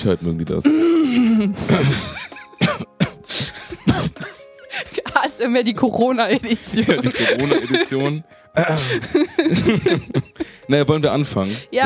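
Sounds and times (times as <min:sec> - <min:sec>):
speech: 0:00.0 - 0:02.9, 0:05.4 - 0:11.8
person clearing throat against a microphone: 0:01.5 - 0:04.4
laughter: 0:06.2 - 0:10.6.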